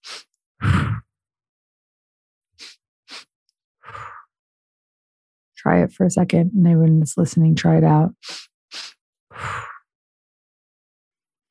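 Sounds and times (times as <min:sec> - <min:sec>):
sharp inhales through the nose during a breathing exercise: 0:00.0 - 0:01.0, 0:02.6 - 0:04.2, 0:08.2 - 0:09.8
breathy exhale out the mouth during a breathing exercise: 0:03.8 - 0:04.2, 0:08.2 - 0:09.8
speech: 0:05.6 - 0:08.5.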